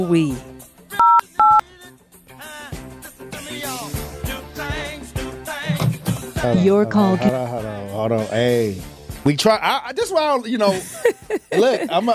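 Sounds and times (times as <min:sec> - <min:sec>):
speech: 0:00.0 - 0:00.5, 0:06.4 - 0:12.1
touch-tone telephone keypad beeps: 0:01.0 - 0:01.6
laughter: 0:10.5 - 0:12.1.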